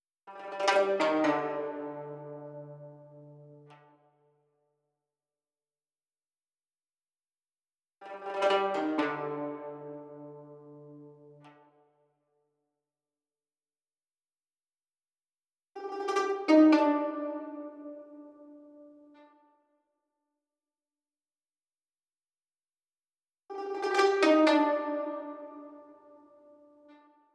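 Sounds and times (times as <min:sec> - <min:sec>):
guzheng playing in C minor: 0:00.4 - 0:03.9, 0:08.2 - 0:11.6, 0:16.1 - 0:18.6, 0:23.7 - 0:26.3.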